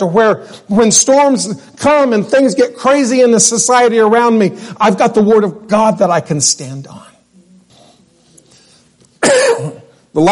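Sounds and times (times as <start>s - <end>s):
speech: 0.0s - 7.1s, 9.3s - 10.3s
sharp cough: 9.2s - 10.0s.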